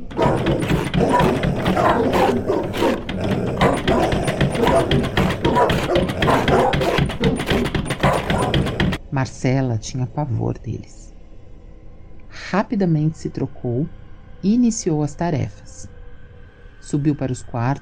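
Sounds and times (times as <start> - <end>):
agitated dogs growling low: 0.0 - 9.0
dogs scratching at a door: 0.0 - 9.0
speech: 9.2 - 11.1, 12.5 - 15.9, 16.9 - 17.8.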